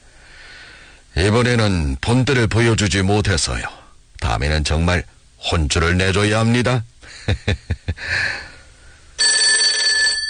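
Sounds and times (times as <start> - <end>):
speech: 1.2 - 3.8, 4.4 - 8.5
telephone bell ringing with a bright metallic trill: 9.2 - 10.2.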